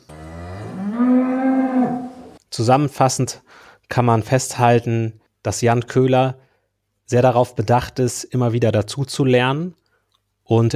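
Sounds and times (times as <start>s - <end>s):
cow mooing: 0.0s - 2.4s
speech: 2.6s - 6.4s, 7.1s - 9.8s, 10.5s - 10.7s.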